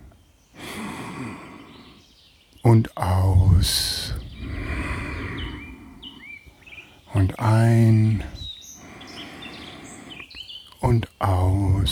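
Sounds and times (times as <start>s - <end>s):
deep breath drawn in during a guided relaxation exercise: 0.0s - 2.0s, 3.9s - 7.0s, 8.2s - 10.3s
speech: 2.6s - 4.2s, 7.2s - 8.4s, 10.9s - 11.9s.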